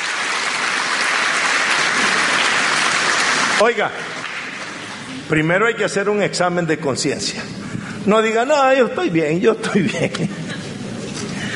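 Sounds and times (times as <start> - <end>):
audience applause: 0.0 - 5.3
speech: 3.6 - 4.2, 5.2 - 10.4.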